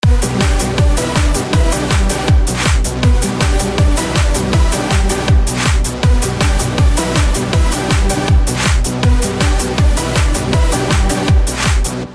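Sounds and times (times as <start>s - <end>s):
marimba techno remix: 0.0s - 12.1s.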